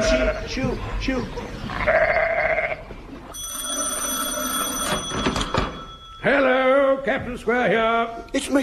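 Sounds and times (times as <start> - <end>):
speech: 0.4 - 2.2, 6.2 - 8.6
sheep bleating: 1.8 - 2.8
steady high-pitched ringing tone: 3.3 - 6.8.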